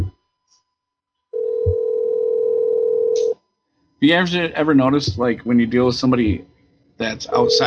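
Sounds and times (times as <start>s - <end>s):
telephone ringback tone on an outgoing call: 1.4s - 3.2s, 7.3s - 7.6s
speech: 4.0s - 7.6s.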